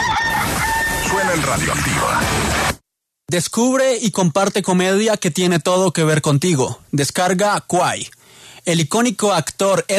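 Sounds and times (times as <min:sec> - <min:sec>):
rooster crowing: 0:00.0 - 0:01.3
speech: 0:01.4 - 0:02.7, 0:03.3 - 0:09.9.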